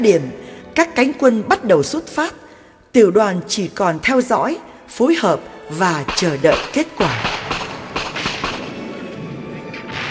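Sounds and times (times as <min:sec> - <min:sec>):
speech: 0:00.0 - 0:07.5
artillery blasts: 0:06.1 - 0:10.0.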